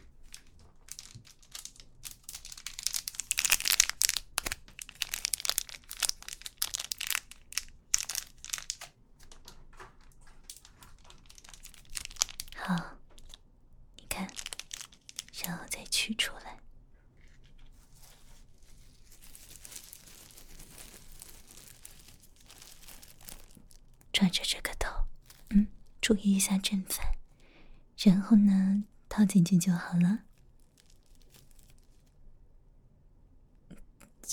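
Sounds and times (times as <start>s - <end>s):
packet being torn open by hand: 0.3s - 13.4s, 14.1s - 15.4s, 17.4s - 24.1s, 25.2s - 25.9s, 30.2s - 32.2s
speech: 24.3s - 24.6s, 26.1s - 27.1s, 28.0s - 30.3s.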